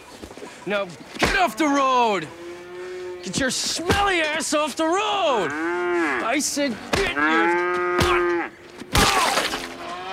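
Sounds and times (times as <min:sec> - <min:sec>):
speech: 0:00.7 - 0:02.4, 0:03.2 - 0:08.3
cow mooing: 0:01.4 - 0:03.4, 0:05.3 - 0:08.6.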